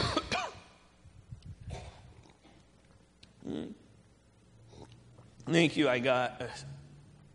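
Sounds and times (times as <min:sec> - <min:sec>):
rough throat clearing: 0:00.0 - 0:00.6, 0:01.7 - 0:02.6
speech: 0:03.5 - 0:03.8, 0:05.5 - 0:06.8.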